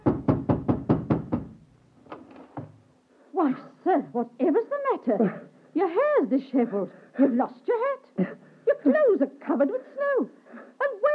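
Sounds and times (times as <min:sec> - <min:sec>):
forceful knocking on a door: 0:00.0 - 0:01.6
speech: 0:03.4 - 0:10.4.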